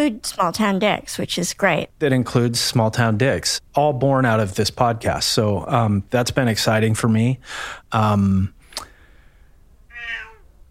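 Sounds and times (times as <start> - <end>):
speech: 0.0 - 8.6
cat meowing: 9.9 - 10.5.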